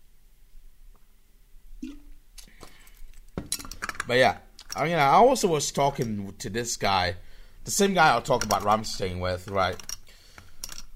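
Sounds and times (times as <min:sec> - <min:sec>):
person sipping and gulping a drink of water: 0:01.8 - 0:03.2
speech: 0:04.1 - 0:09.9.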